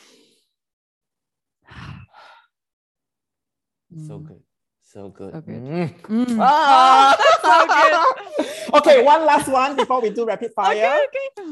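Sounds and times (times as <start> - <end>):
people taking a deep breath together: 1.6 - 2.6, 8.2 - 8.8
speech: 4.0 - 11.5
laughter: 6.4 - 11.4.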